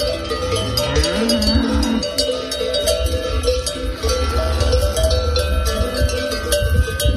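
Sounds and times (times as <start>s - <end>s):
many cowbells clanking on cattle in Gredos, Spain: 0.0s - 7.1s
cattle mooing: 0.4s - 2.2s.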